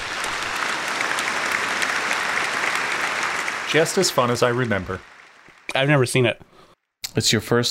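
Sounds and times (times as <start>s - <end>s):
applause: 0.0s - 6.3s
speech: 3.7s - 5.1s, 5.8s - 6.5s, 7.1s - 7.6s.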